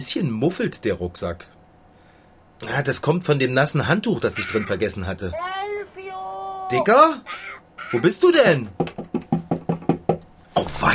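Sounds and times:
speech: 0.0s - 1.6s, 2.6s - 5.7s, 6.7s - 9.0s, 10.6s - 10.9s
knocks from inside a wooden chest: 8.8s - 10.3s.

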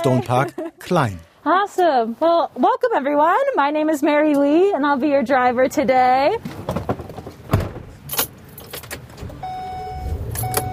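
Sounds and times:
laughter: 0.0s - 0.9s
speech: 0.0s - 6.8s
keys jangling inside snow coach bus: 8.1s - 9.0s
high warning chime beeping in snow coach bus: 9.4s - 10.7s.

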